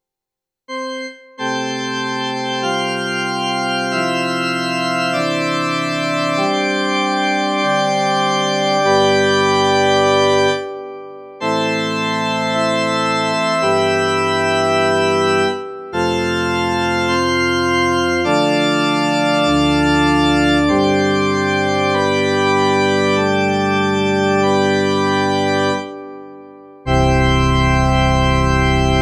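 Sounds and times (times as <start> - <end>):
CN35 organ playing: 0.7 - 29.0.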